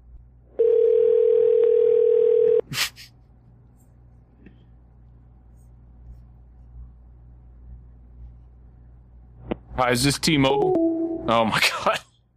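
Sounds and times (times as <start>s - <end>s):
telephone ringing tone on an outgoing call: 0.6s - 2.6s
speech: 9.8s - 12.0s.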